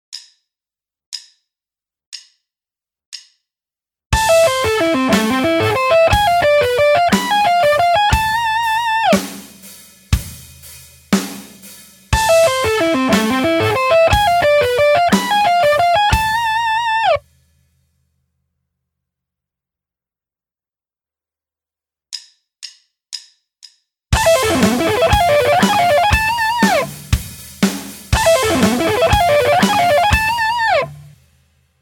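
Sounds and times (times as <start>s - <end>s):
guitar sweep picking: 4.2s - 9.4s, 12.2s - 17.2s, 24.2s - 27.2s, 28.1s - 31.2s.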